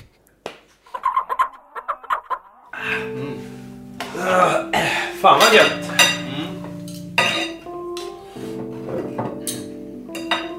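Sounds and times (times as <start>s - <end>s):
speech: 4.1s - 5.8s
cutlery and dishes clinking during an Easter lunch: 5.4s - 10.5s.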